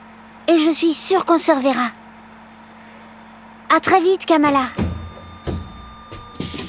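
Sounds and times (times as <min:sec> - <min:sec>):
speech: 0:00.5 - 0:02.0, 0:03.7 - 0:04.8
bus doors shutting with a thump: 0:04.4 - 0:06.6
sharp pneumatic hisses of bus doors: 0:06.4 - 0:06.6.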